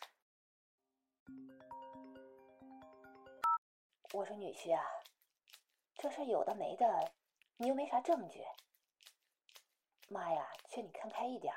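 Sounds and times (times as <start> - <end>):
mobile phone ringtone for an incoming call: 1.4 - 3.6
speech: 4.1 - 5.1, 6.0 - 8.6, 10.1 - 11.5.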